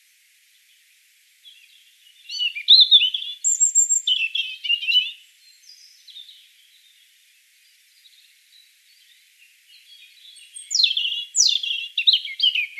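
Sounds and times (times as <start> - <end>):
European robin Erithacus rubecula song: 1.4 - 12.7.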